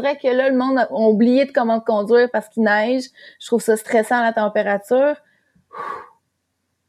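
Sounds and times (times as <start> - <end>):
speech: 0.0 - 6.1
deep breath drawn in during a mindfulness exercise: 5.4 - 6.1.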